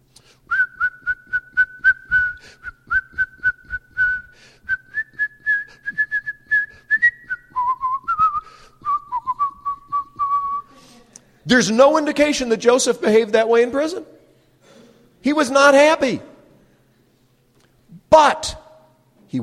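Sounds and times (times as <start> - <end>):
person whistling a bright bouncy melody: 0.5 - 10.7
speech: 11.5 - 14.1, 15.3 - 16.3.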